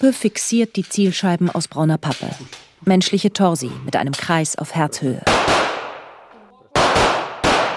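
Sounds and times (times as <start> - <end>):
speech: 0.0 - 5.7
pistol shots at a shooting range: 5.2 - 7.7.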